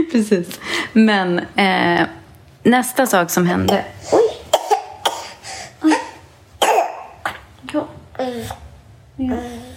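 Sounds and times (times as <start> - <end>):
speech: 0.0 - 4.2, 9.2 - 9.6
child coughing: 3.7 - 7.4.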